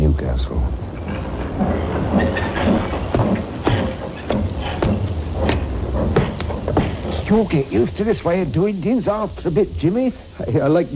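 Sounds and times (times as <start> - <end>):
speech: 0.2 - 2.5, 7.3 - 10.9
train cars rolling through a railroad yard at Almouth around Newcastle: 0.8 - 9.4.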